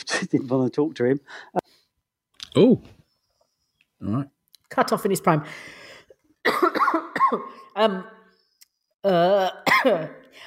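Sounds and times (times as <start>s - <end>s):
speech: 0.0s - 1.6s, 2.6s - 3.0s, 4.0s - 5.8s, 7.3s - 8.2s, 9.0s - 10.4s
coughing fit: 6.4s - 7.6s, 9.6s - 10.2s.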